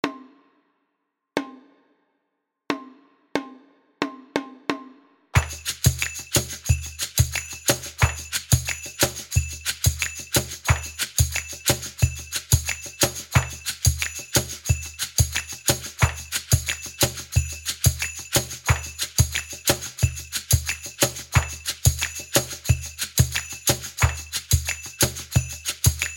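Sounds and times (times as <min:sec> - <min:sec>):
percussion loop at 90 bpm: 0:05.4 - 0:26.1.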